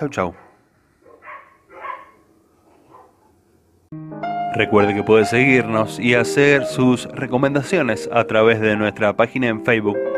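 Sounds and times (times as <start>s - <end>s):
speech: 0.0s - 0.4s, 4.6s - 10.1s
dogs barking: 0.2s - 3.4s
music: 3.9s - 10.1s.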